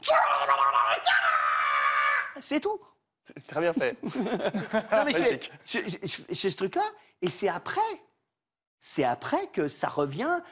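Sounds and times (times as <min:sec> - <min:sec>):
person imitating men shouting while passing: 0:00.0 - 0:02.4
speech: 0:00.1 - 0:01.4, 0:02.4 - 0:08.1, 0:08.8 - 0:10.5
laughter: 0:03.7 - 0:05.6.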